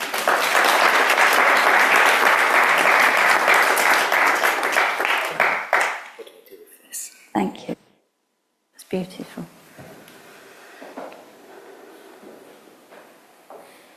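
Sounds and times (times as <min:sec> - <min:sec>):
audience applauding: 0:00.0 - 0:06.2
speech: 0:08.9 - 0:09.6.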